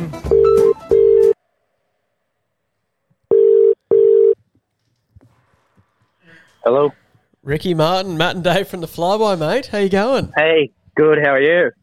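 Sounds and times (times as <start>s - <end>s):
telephone double-beep ringback tone: 0.3s - 1.4s, 3.3s - 4.4s
speech: 6.6s - 11.8s.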